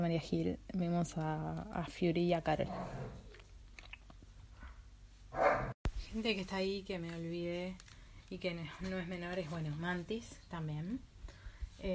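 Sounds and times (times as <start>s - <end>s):
speech: 0.0s - 3.2s, 6.1s - 11.1s
dog gnawing and chewing: 3.2s - 4.3s
dog yelping bark: 5.4s - 5.8s.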